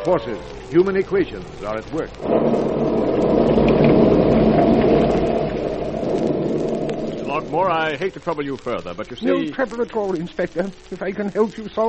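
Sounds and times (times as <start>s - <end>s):
speech: 0.0s - 3.4s, 7.4s - 11.8s
deep rumble of thunder: 0.0s - 8.7s
heavy rain in a storm outside a house: 0.0s - 11.8s.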